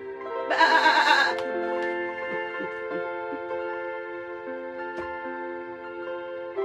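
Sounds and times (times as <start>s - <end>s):
sheep bleating: 0.5s - 1.4s
soft sustained musical tones: 1.4s - 6.6s.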